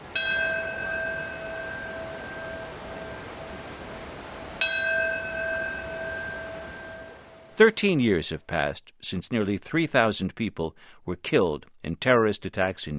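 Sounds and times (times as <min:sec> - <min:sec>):
large bell tolling: 0:00.0 - 0:07.5
speech: 0:07.6 - 0:12.9.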